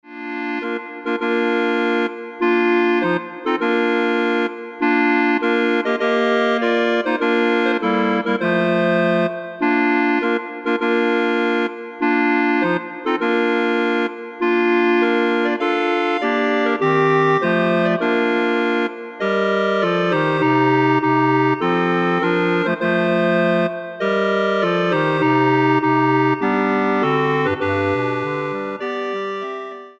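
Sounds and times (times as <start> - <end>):
clarinet ensemble: 0.1 - 29.9.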